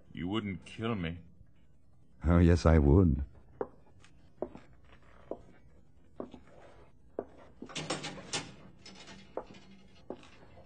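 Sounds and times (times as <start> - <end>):
speech: 0.3 - 1.3, 2.2 - 3.3
slow evenly spaced footsteps echoing: 3.3 - 7.8, 8.9 - 10.6.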